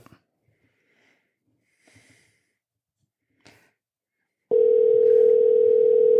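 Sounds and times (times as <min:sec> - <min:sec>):
telephone line tone: 0:04.5 - 0:06.1.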